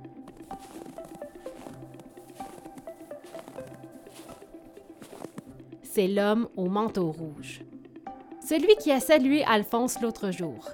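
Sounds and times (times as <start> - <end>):
footsteps crunching in snow: 0.3 - 5.6
speech: 6.0 - 7.7, 8.5 - 10.7.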